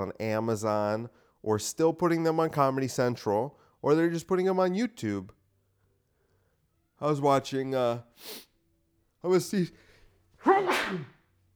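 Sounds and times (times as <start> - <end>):
speech: 0.0 - 5.4, 7.0 - 8.5, 9.2 - 9.8, 10.4 - 11.2
loud sneeze: 10.4 - 11.1.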